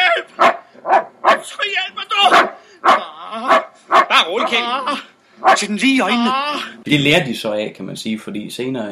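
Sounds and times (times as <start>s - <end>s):
large guard dog barking: 0.4s - 1.5s, 2.3s - 4.6s, 5.4s - 5.7s
speech: 4.2s - 8.9s.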